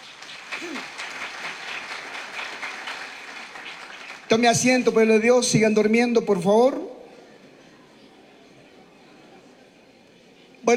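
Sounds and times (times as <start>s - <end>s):
crowd applauding: 0.0s - 4.7s
speech: 4.3s - 6.9s.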